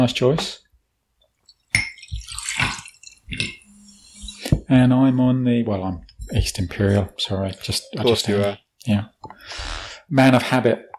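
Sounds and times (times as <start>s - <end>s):
speech: 0.0s - 0.6s, 3.3s - 3.6s, 4.7s - 10.9s
tonic water fizzing as it is poured into a glass for a gin and tonic: 1.4s - 4.6s
sharp glass clink: 1.5s - 4.6s.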